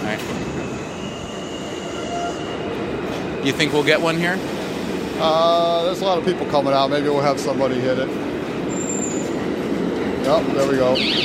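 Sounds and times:
subway train wheels rumbling on rails arriving at a station: 0.0 - 11.0
speech: 0.1 - 0.7, 3.4 - 4.6, 5.2 - 8.2, 10.2 - 11.2
thin high squeal of subway train: 0.7 - 2.7, 8.7 - 9.4.

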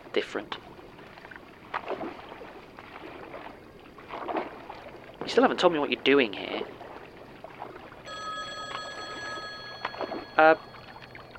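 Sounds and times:
speech: 0.2 - 0.7, 5.3 - 6.5, 10.4 - 10.6
payphone ringing with electronic trill: 8.1 - 11.3.

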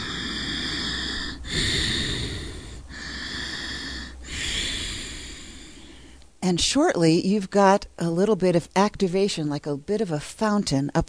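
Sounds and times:
Ujjayi yogic breathing through a narrowed throat: 0.0 - 6.2
speech: 6.5 - 11.0.

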